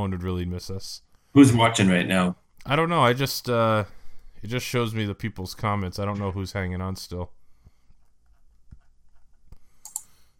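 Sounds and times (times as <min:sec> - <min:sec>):
speech: 0:00.0 - 0:07.4
soft clicks of computer buttons: 0:09.5 - 0:10.2.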